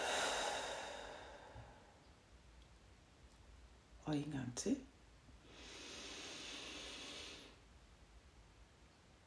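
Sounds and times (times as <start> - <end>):
slow breathy exhale during breathing exercise: 0.0 - 2.0, 5.4 - 7.6
speech: 4.1 - 4.9.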